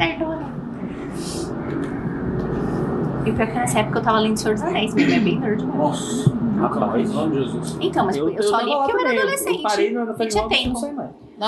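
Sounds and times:
airplane droning overhead: 0:00.0 - 0:11.4
speech: 0:03.3 - 0:11.4
laughter: 0:06.1 - 0:07.7.

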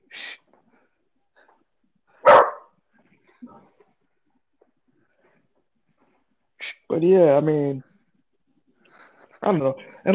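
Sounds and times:
dog barking: 0:02.2 - 0:02.8
speech: 0:06.9 - 0:07.9, 0:09.4 - 0:10.1.

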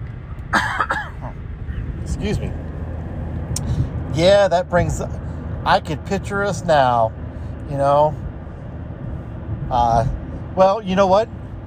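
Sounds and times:
low steady hum: 0:00.0 - 0:11.6
person coughing: 0:00.5 - 0:01.4
speech: 0:02.2 - 0:02.7, 0:04.2 - 0:08.2, 0:09.7 - 0:11.4.

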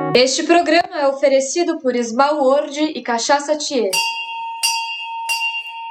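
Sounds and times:
speech: 0:00.1 - 0:04.8
bright bell ringing as advertisement cue: 0:03.9 - 0:05.8.

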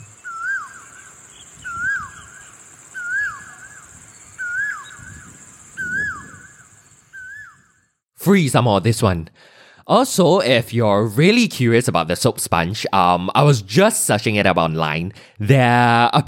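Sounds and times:
constant thin high-pitched hiss: 0:00.0 - 0:07.5
bird singing a warbling phrase in a jungle: 0:00.0 - 0:08.0
speech: 0:08.2 - 0:16.2.

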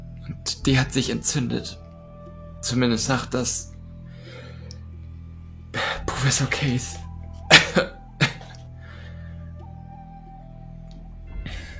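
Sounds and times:
faint tonal drone: 0:00.0 - 0:11.7
quiet hum: 0:00.0 - 0:11.7
speech: 0:00.3 - 0:01.8, 0:02.6 - 0:03.7, 0:06.2 - 0:07.0
person coughing sharply: 0:07.5 - 0:08.6.

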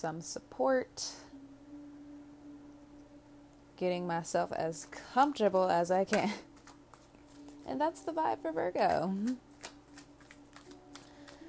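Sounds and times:
speech: 0:00.0 - 0:01.3, 0:03.8 - 0:06.5, 0:07.7 - 0:09.5
faint steady hum: 0:00.0 - 0:11.4
tarot card deck being shuffled: 0:06.1 - 0:11.4.

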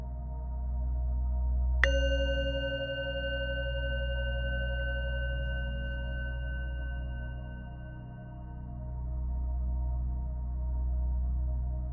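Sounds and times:
steady low hum: 0:00.0 - 0:11.9
single bell struck and ringing: 0:01.8 - 0:08.0.

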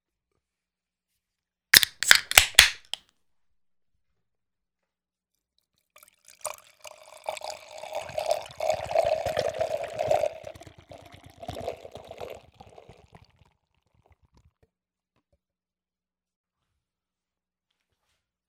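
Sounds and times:
sharp clicks: 0:01.8 - 0:03.0
beer being poured into a glass: 0:06.0 - 0:13.5
beer foam fizzing: 0:07.0 - 0:13.1.

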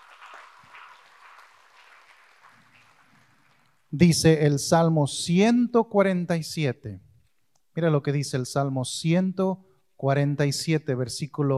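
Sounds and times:
audience applauding: 0:00.0 - 0:03.9
speech: 0:03.9 - 0:07.1, 0:07.8 - 0:11.5.

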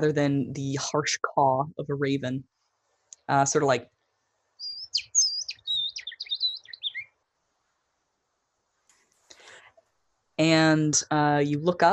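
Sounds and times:
speech: 0:00.0 - 0:02.6, 0:03.3 - 0:04.0, 0:10.4 - 0:11.9
brightly colored purple bird singing lilting sweet song: 0:04.6 - 0:07.2.

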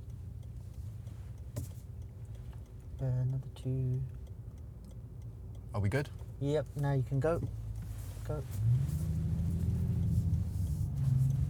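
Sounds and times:
car engine rumble: 0:00.0 - 0:11.4
speech: 0:03.0 - 0:04.2, 0:05.7 - 0:07.6, 0:08.3 - 0:09.2.

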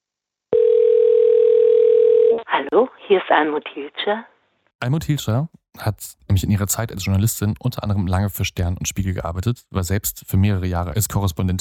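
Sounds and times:
telephone ringing tone of a phone call being placed: 0:00.5 - 0:02.5
speech: 0:02.7 - 0:11.5.

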